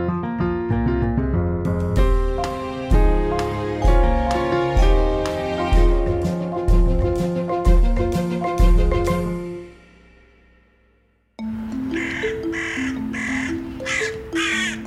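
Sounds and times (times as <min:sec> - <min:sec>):
soft musical bed: 0:00.0 - 0:14.8
carrion crow cawing: 0:11.9 - 0:14.8.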